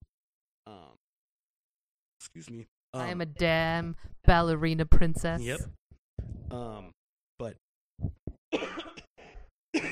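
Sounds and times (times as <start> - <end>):
speech: 2.2 - 5.8, 6.5 - 8.8
woman coughing harshly during casual conversation: 8.6 - 9.1, 9.8 - 9.9.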